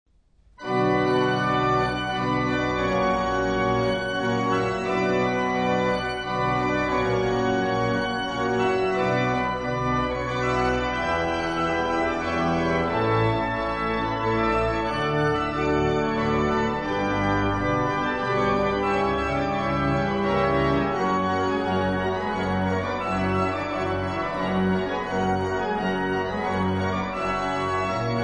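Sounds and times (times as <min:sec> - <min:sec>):
Russian and German organ music: 0:00.6 - 0:28.2.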